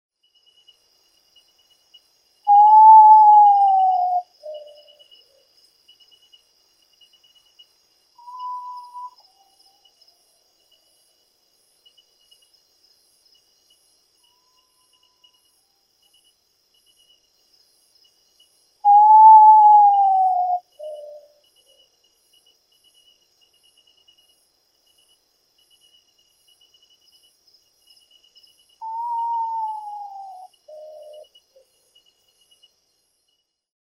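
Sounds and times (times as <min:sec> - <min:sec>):
common potoo calling: 0:02.5 - 0:04.9, 0:18.9 - 0:21.3, 0:28.8 - 0:31.2.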